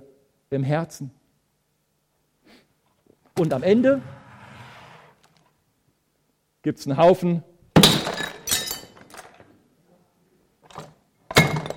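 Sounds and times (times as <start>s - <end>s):
speech: 0.5s - 1.2s, 3.4s - 4.2s, 6.6s - 7.5s
glass breaking into shards: 7.8s - 9.2s, 11.3s - 11.7s.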